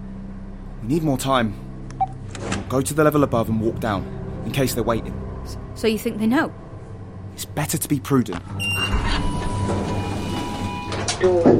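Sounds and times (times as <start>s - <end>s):
steady low rumble: 0.0s - 10.0s
speech: 0.8s - 1.7s, 2.7s - 6.6s, 7.4s - 9.8s, 11.2s - 11.5s
sliding door opening with mechanical whoosh and clatter: 8.5s - 11.5s.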